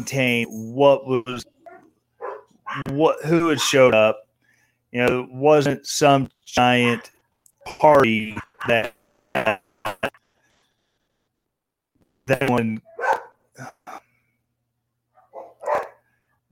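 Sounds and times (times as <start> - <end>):
speech: 0.0 - 1.6, 2.7 - 4.2, 4.9 - 10.0, 12.3 - 12.9
dog yips: 1.6 - 2.9, 12.9 - 13.3, 15.2 - 16.0
dogs barking excitedly: 1.6 - 3.8, 6.6 - 7.2, 12.8 - 13.4, 15.1 - 16.1.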